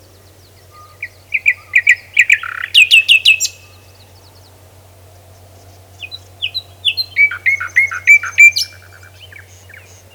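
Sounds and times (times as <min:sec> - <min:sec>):
Luscinia megarhynchos common nightingale singing chirps and descending whistles: 0:00.0 - 0:04.6, 0:05.4 - 0:10.1.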